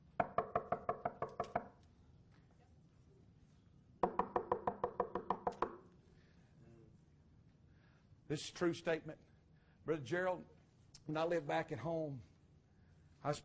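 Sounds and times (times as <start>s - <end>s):
rapid firm knocking on wood: 0.2s - 1.8s, 4.0s - 5.8s
speech: 8.3s - 12.3s, 13.2s - 13.4s.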